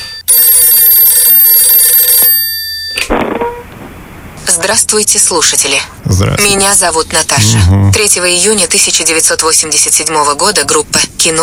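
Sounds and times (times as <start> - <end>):
telephone ringing for an incoming call: 0.0 - 3.0
speech: 4.6 - 11.4.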